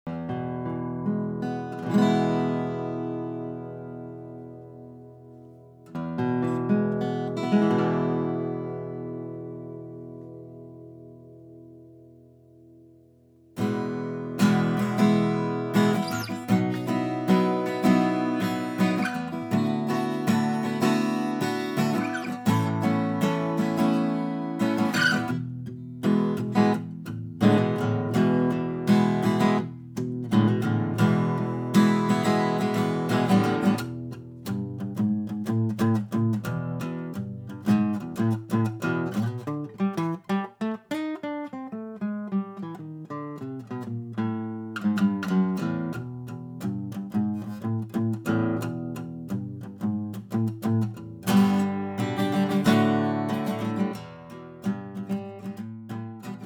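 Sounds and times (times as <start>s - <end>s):
Rozawood 000 42 acoustic guitar: 0.1s - 56.4s.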